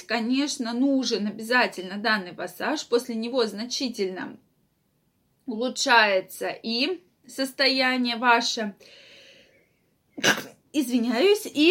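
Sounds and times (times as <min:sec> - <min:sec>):
faint steady hum: 0:00.0 - 0:11.6
speech: 0:00.1 - 0:04.4, 0:05.5 - 0:09.0, 0:10.2 - 0:11.6
person sneezing: 0:10.2 - 0:10.6.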